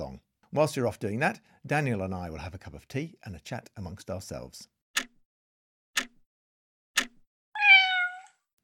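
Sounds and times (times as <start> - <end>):
speech: 0.1 - 5.1
sharp clicks: 5.0 - 5.2, 6.0 - 6.2, 7.0 - 7.2
cat meowing: 7.6 - 8.4.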